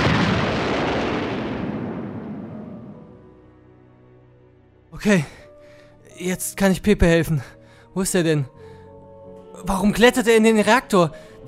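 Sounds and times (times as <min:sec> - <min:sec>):
grenade explosion: 0:00.0 - 0:03.3
speech: 0:05.0 - 0:05.4, 0:06.2 - 0:08.6, 0:09.6 - 0:11.4.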